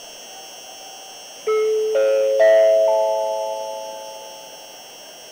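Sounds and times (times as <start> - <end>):
JR Central Nozomi train bound for Hiroshima at a station: 1.5 - 4.3.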